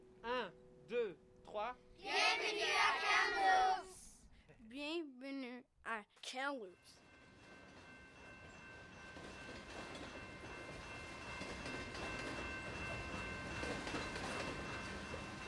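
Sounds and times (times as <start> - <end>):
speech: 0.2 - 3.9, 4.6 - 7.0
freight train passing on rails: 7.0 - 15.4.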